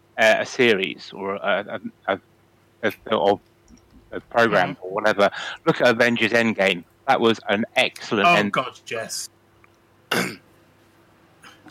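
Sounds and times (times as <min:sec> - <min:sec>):
speech: 0:00.2 - 0:03.5, 0:04.1 - 0:09.4, 0:10.1 - 0:10.4
single short cough: 0:10.1 - 0:10.4.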